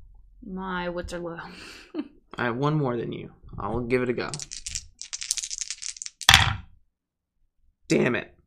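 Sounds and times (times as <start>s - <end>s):
speech: 0.5s - 4.6s, 7.9s - 8.4s
dice rolling on a table: 4.3s - 6.7s.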